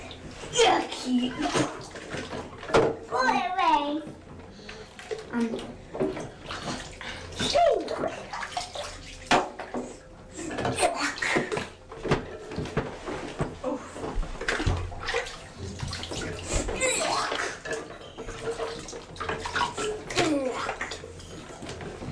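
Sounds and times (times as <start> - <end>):
water sloshing and splashing in a bathtub: 0.0 - 22.0
speech: 0.5 - 2.0, 5.4 - 5.8
child's voice: 3.1 - 4.2, 16.8 - 17.3.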